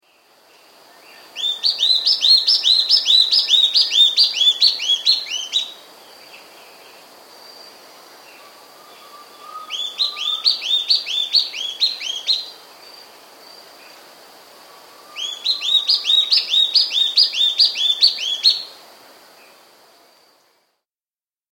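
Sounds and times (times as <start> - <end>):
spot-backed antbird calling in South America: 1.4 - 5.8, 8.4 - 12.6, 14.7 - 18.7.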